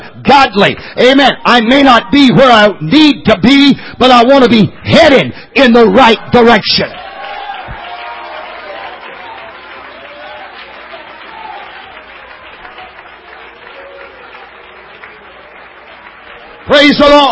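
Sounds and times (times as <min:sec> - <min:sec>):
speech: 0:00.2 - 0:07.0, 0:16.7 - 0:17.3
audience clapping: 0:07.0 - 0:17.3.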